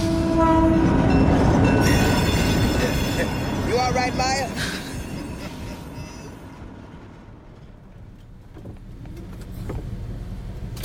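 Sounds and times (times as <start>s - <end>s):
train horn blaring in steady tones: 0.0s - 1.6s
train roaring past: 0.0s - 8.5s
train wheels rumbling on the rails: 0.0s - 10.8s
speech: 3.9s - 4.8s.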